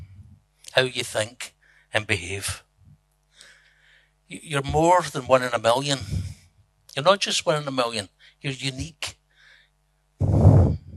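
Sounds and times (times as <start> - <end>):
speech: 0.8 - 2.7, 4.3 - 6.2, 7.0 - 9.2
breathy nasal exhale: 10.2 - 10.9.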